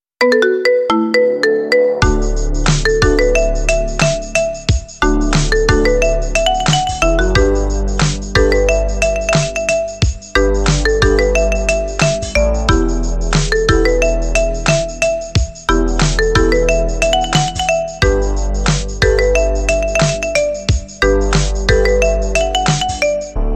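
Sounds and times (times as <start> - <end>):
marimba ringtone: 0.2 - 18.3, 19.0 - 23.4.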